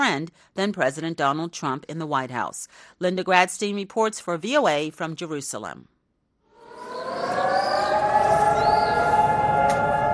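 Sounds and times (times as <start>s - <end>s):
speech: 0.1s - 5.9s
civil defense siren wailing: 6.6s - 10.1s.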